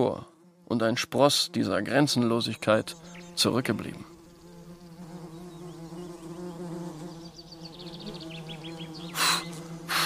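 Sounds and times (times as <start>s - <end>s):
speech: 0.0s - 4.1s
wasps buzzing around leftover fig bread on a garden table: 0.0s - 10.0s.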